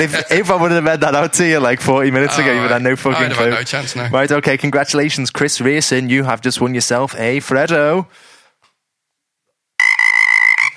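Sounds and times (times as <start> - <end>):
speech: 0.0 - 8.3
frog croaking: 9.8 - 10.7.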